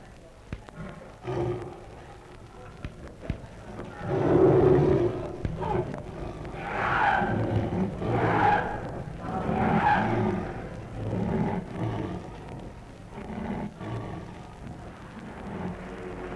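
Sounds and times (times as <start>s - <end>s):
murmur: 0.0s - 16.3s
performing lion roaring and growling: 0.6s - 16.3s.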